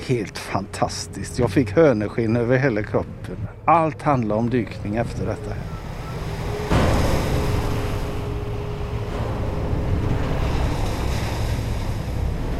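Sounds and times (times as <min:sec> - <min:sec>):
buffeting wind at sea: 0:00.0 - 0:12.5
steady low ferry engine drone: 0:00.0 - 0:12.5
waves rushing and splashing against a ferry hull in rough water: 0:00.0 - 0:12.5
speech: 0:00.1 - 0:05.8.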